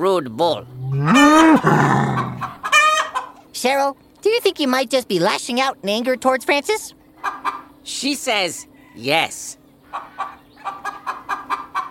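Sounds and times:
speech: 0.0 - 2.3, 3.6 - 7.0, 7.9 - 11.0
hen clucking: 0.6 - 3.4, 7.2 - 7.7, 9.9 - 11.8.

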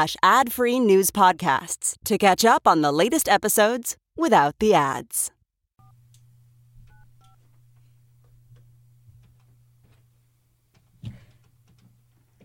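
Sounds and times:
speech: 0.0 - 5.4
telephone keypad tones: 6.9 - 7.4.

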